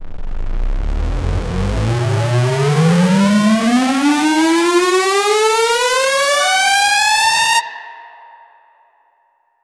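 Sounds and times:
epic supersaw synth riser build up: 0.0s - 7.6s.

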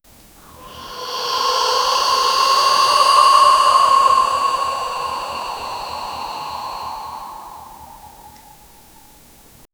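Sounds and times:
person snoring while asleep: 0.4s - 9.1s.

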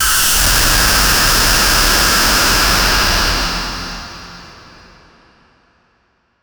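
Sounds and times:
loud electric shock: 0.0s - 4.8s.

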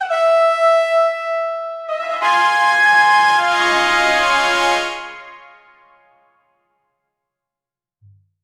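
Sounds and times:
success fanfare on trumpets: 0.0s - 6.2s.

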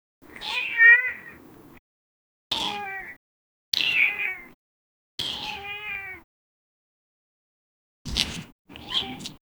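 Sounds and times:
cat sounds: 0.3s - 1.4s, 2.5s - 3.2s, 5.2s - 6.2s, 8.1s - 9.4s.

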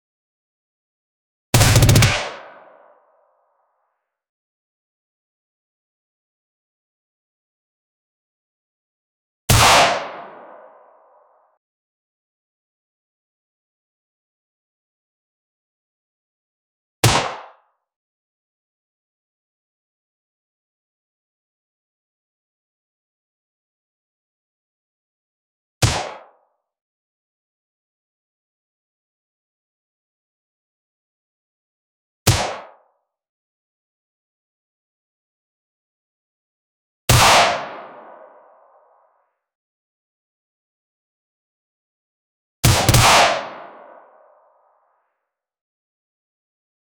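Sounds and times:
gunshot: 1.6s - 2.6s, 9.5s - 10.3s, 25.8s - 26.3s, 32.3s - 32.8s, 37.1s - 38.1s, 42.6s - 43.9s.

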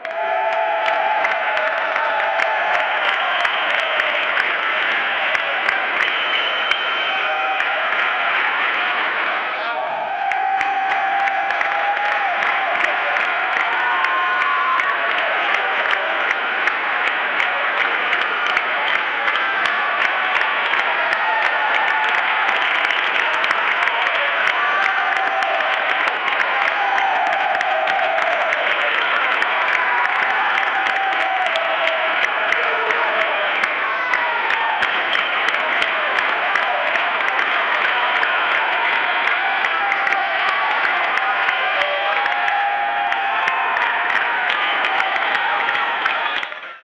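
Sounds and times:
loud stadium crowd chanting: 0.0s - 46.8s.

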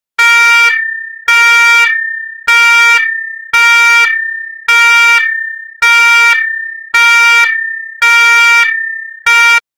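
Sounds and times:
ship's emergency alarm blaring continuously: 0.2s - 9.7s.

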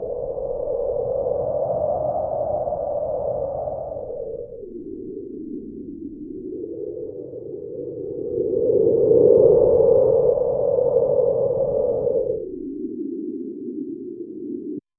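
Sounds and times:
cold wind on icy plains in Iceland: 0.0s - 14.9s.

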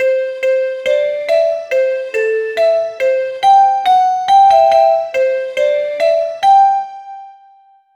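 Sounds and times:
positive simple elevator melody: 0.0s - 7.9s.

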